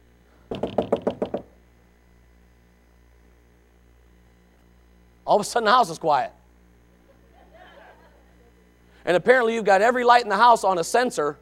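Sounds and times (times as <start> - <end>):
speech: 0.5 - 0.8, 5.3 - 6.4, 9.0 - 11.4
knocking on a door: 0.5 - 1.5
laughter: 7.0 - 8.7.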